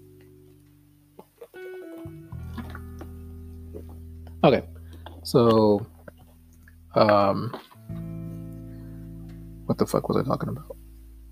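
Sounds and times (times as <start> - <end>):
low hum: 0.0 - 11.3
person drinking water and swallowing: 2.4 - 3.1, 5.9 - 8.1
speech: 4.4 - 5.9, 6.9 - 7.6, 9.7 - 10.8.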